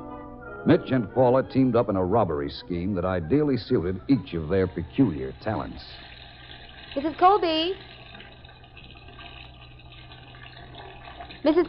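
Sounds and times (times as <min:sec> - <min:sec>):
speech: 0:00.6 - 0:06.1, 0:06.9 - 0:08.0, 0:11.4 - 0:11.6
hot water pouring into a bathtub: 0:03.8 - 0:11.6.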